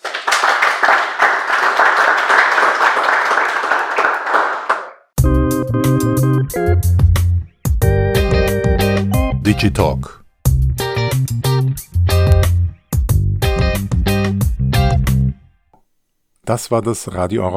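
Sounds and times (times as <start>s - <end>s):
audience applause: 0.0s - 5.1s
bright instrumental music: 5.2s - 15.4s
speech: 9.6s - 10.2s, 16.5s - 17.5s.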